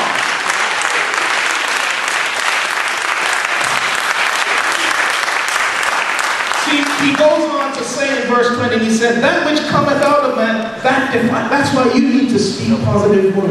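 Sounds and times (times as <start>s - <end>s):
room full of people applauding: 0.0s - 8.4s
speech: 7.2s - 13.4s.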